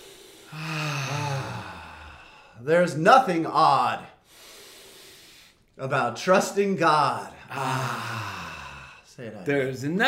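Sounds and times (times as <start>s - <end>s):
deep breath with voiced sigh-like exhale during a guided breathing pause: 0.0s - 2.6s, 4.2s - 5.7s, 7.5s - 9.1s
speech: 2.6s - 4.1s, 5.8s - 8.3s, 9.2s - 10.0s.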